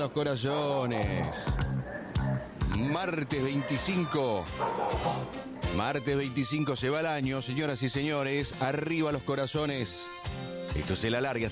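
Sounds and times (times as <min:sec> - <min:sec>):
speech: 0:00.0 - 0:11.4
small dog yapping and barking: 0:03.4 - 0:05.4.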